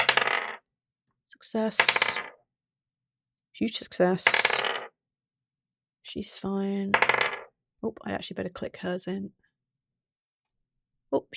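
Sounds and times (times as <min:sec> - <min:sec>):
dice clattering and tumbling across a hard surface: 0:00.0 - 0:00.6, 0:01.7 - 0:02.4, 0:04.2 - 0:04.9, 0:06.9 - 0:07.5
speech: 0:01.3 - 0:02.2, 0:03.6 - 0:04.7, 0:06.1 - 0:07.2, 0:07.8 - 0:09.4, 0:11.1 - 0:11.3.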